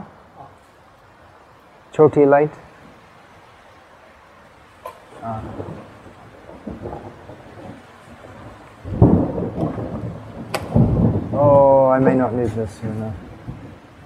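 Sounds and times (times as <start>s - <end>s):
steady rain pouring: 0.0s - 14.0s
speech: 2.0s - 2.6s, 12.4s - 13.3s
rumbling thunder with sharp cracks: 5.1s - 14.0s.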